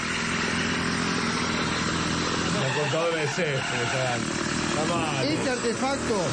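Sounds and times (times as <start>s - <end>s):
string trimmer engine revving: 0.0s - 6.3s
speech: 2.9s - 6.3s.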